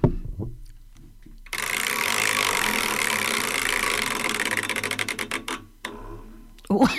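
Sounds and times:
prize wheel spinning with a ticking rattle: 1.5 - 5.7.

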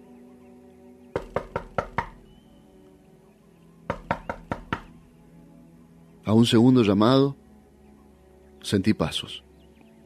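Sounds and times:
sharp knocks on a wooden door: 1.1 - 2.2, 3.9 - 5.0
speech: 6.3 - 7.4, 8.6 - 9.5.

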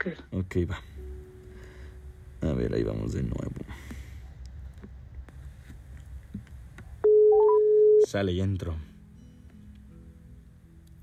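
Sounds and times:
speech: 0.0 - 0.9, 2.4 - 4.0, 8.1 - 8.9
faint low noise: 0.0 - 11.0
telephone busy tone after a rejected call: 7.0 - 8.1.

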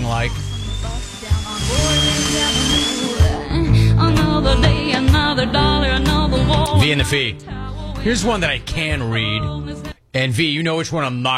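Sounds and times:
power drill whirring: 0.0 - 5.0
speech: 0.2 - 2.7, 4.4 - 11.3.

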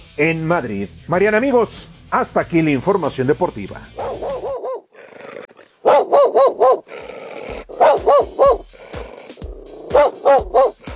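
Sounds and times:
speech: 0.2 - 4.0
dog barking: 4.0 - 4.9, 5.8 - 10.9
dog growling and snarling: 4.0 - 10.9.

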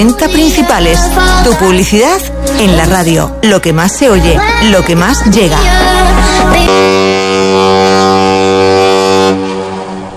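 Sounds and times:
speech: 0.0 - 7.4
cruise ship horn blast at the port of Melilla: 6.1 - 10.1.

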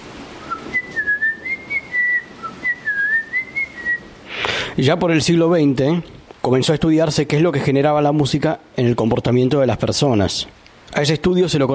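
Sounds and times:
person whistling a simple melody: 0.4 - 4.0
speech: 4.8 - 11.7.

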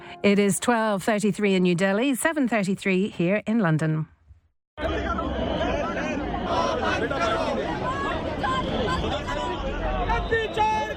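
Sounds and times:
speech: 0.2 - 4.1
crowd of lawmakers marching in protest: 4.8 - 10.9
overlapping voices and shouts of lawmakers: 4.8 - 10.9.

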